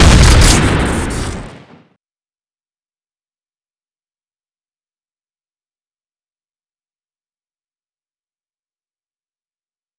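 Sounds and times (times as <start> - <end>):
scatter gun shot: 0.0 - 1.8.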